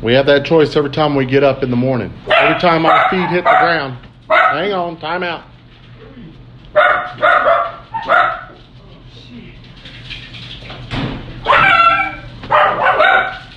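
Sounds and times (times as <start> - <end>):
speech: 0.0 - 5.5, 6.8 - 8.4
dogs barking: 2.2 - 4.9, 6.7 - 8.7, 11.4 - 13.5.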